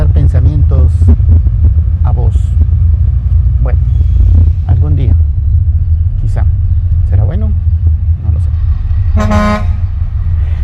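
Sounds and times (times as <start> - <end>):
steady low rumble of traffic: 0.0 - 10.6
car horn blast in traffic: 9.1 - 9.9.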